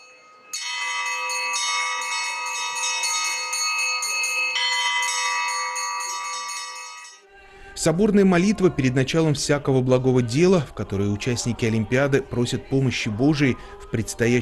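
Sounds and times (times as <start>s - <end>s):
peal of church bells ringing from a school belfry: 0.0s - 7.2s
speech: 7.8s - 14.3s.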